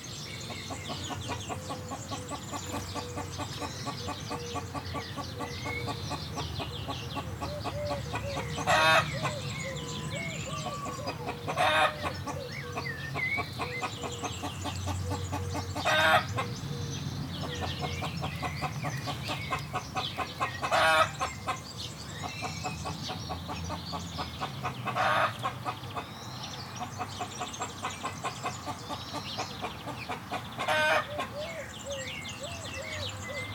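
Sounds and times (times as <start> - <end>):
hen: 0.5 - 33.5.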